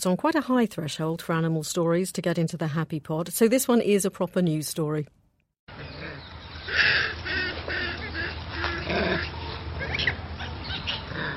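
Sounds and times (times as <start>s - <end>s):
speech: 0.0s - 5.2s
troop of Sri Lankan toque macaques calling: 5.7s - 11.3s.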